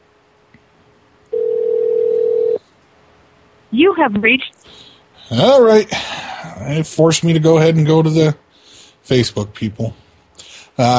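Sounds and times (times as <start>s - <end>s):
telephone line ringing: 1.3s - 2.6s
speech: 3.8s - 4.6s, 5.3s - 6.0s, 6.6s - 8.4s, 9.1s - 10.0s, 10.8s - 10.9s.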